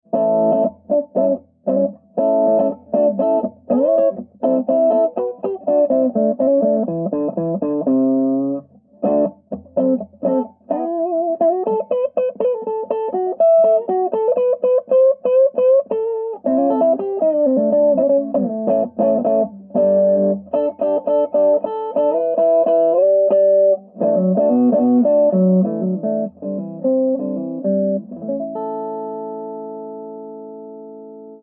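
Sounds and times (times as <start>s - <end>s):
electric guitar amp recorded with two mics: 0.1s - 31.4s.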